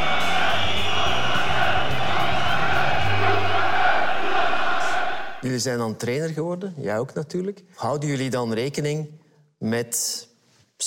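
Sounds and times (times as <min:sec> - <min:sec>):
large football stadium crowd roaring and cheering: 0:00.0 - 0:05.4
speech: 0:05.5 - 0:10.8.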